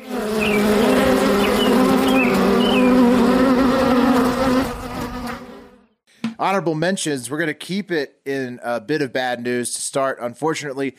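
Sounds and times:
bee buzzing: 0.0 - 6.0
speech: 6.5 - 10.9.

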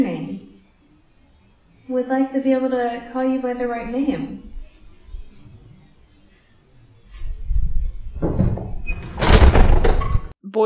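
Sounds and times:
low rumbling: 0.6 - 10.2
speech: 1.9 - 4.5
door slamming shut: 8.2 - 10.3.

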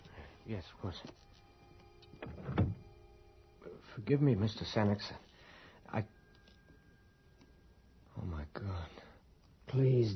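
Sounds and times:
speech: 0.5 - 1.4, 2.2 - 2.6, 3.6 - 5.3, 5.9 - 6.2, 8.5 - 9.0, 9.7 - 10.1
door pushed shut with thud: 2.2 - 2.8.

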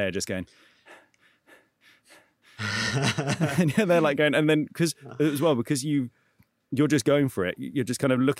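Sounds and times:
speech: 0.0 - 1.1, 2.6 - 8.3
person mimicking medium jogging breaths in a recording booth: 0.5 - 3.5
laughter: 2.6 - 4.4, 5.0 - 5.6.

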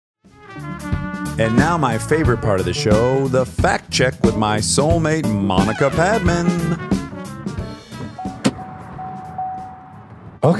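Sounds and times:
speech: 1.4 - 7.0
car door opening and closing: 7.8 - 10.4
low engine hum: 8.0 - 10.5
steady high electronic tone: 8.2 - 10.1.

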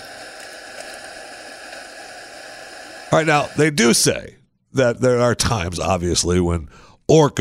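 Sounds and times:
hydrophone hiss of water noise: 0.0 - 3.8
speech: 3.1 - 7.3.

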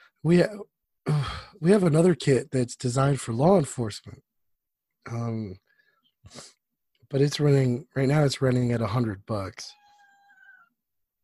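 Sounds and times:
speech: 0.2 - 4.3, 5.0 - 5.6, 6.2 - 9.8
domestic cat meowing: 9.7 - 10.7.

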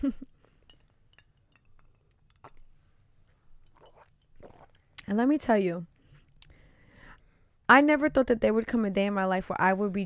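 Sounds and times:
speech: 0.0 - 0.2, 5.1 - 5.9, 7.7 - 10.0
glasses clinking in a toast: 0.5 - 2.0.

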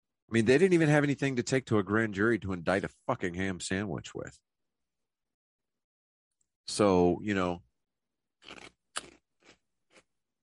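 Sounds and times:
speech: 0.3 - 4.5, 6.7 - 7.7, 8.4 - 9.1
person crunching on barbecue flavored pork rinds: 8.4 - 10.2.

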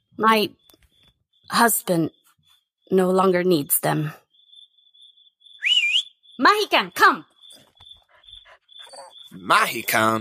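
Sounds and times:
speech: 0.2 - 0.6, 1.5 - 2.2, 2.9 - 4.2, 6.4 - 7.3, 9.3 - 10.2
tame wolf whimpering: 8.8 - 9.2.

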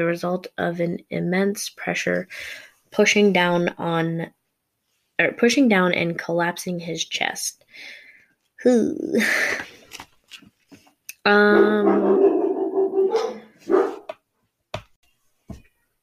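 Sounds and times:
speech: 0.0 - 4.4, 5.2 - 8.0, 8.6 - 9.8, 11.2 - 12.4
dogs barking: 11.5 - 14.1.

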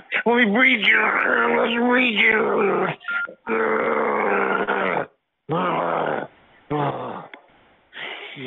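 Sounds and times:
speech: 0.2 - 4.7
person growling over a phone line: 0.6 - 7.3.

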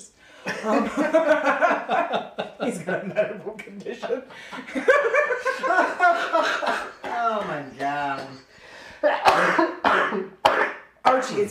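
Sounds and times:
speech: 0.4 - 7.6, 11.3 - 11.5
laughter: 0.4 - 10.4
person coughing: 6.7 - 8.0, 9.1 - 10.9.

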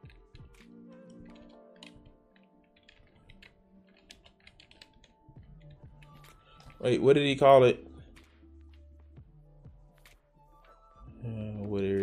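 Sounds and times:
typing on a computer keyboard in the dark: 0.0 - 6.8
speech: 6.8 - 7.9.

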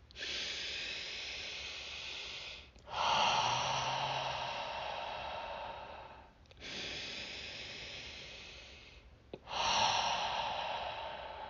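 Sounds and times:
deep breaths taken together during a guided relaxation: 0.0 - 11.4.

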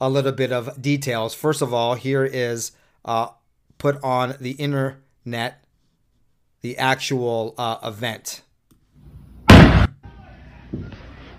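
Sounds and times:
speech: 0.0 - 5.6, 6.6 - 8.4
noise: 0.0 - 11.3
flashbang grenade blast during a raid on a home: 9.5 - 10.0.

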